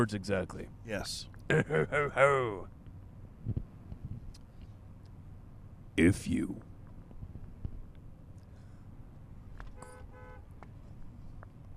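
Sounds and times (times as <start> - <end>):
speech: 0.0 - 2.8, 6.0 - 6.7
steady low traffic rumble: 0.0 - 11.7
laughter: 1.5 - 2.6
car horn honking: 9.8 - 10.5.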